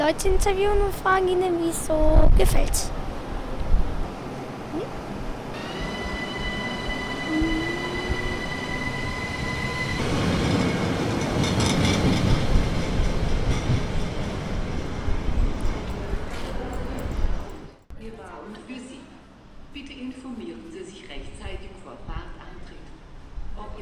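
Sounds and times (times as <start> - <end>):
speech: 0.0 - 3.0
train rumbling along a station platform: 2.9 - 17.9
train wheels squealing with a high-pitched whine: 5.6 - 11.0.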